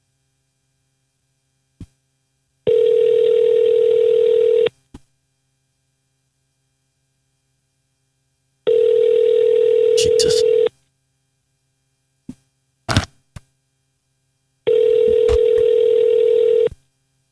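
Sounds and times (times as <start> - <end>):
faint mains hum: 0.0 - 17.3
ringback tone of an outgoing telephone call: 2.7 - 4.7, 8.7 - 10.7, 14.7 - 16.7.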